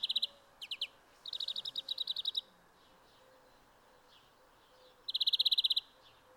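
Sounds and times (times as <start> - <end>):
Greenfinch twittering in chirping bursts and rolling trills: 0.0 - 2.5, 4.7 - 5.9
soft background hiss: 0.0 - 6.3.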